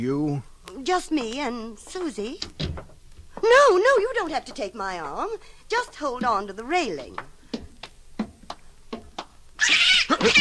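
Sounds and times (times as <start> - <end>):
speech: 0.0 - 2.7, 3.4 - 7.3, 9.6 - 10.3
soft taps: 0.7 - 9.4
footsteps: 0.7 - 10.3
cat yowling: 9.6 - 10.3.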